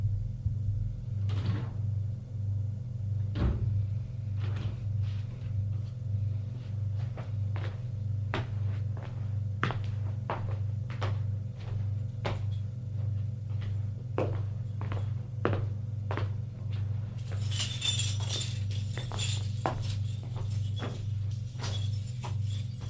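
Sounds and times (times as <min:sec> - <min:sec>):
elevator mechanical hum: 0:00.0 - 0:22.8
elevator thunks and clicks: 0:03.3 - 0:03.8
bright metallic jingle: 0:17.2 - 0:22.8.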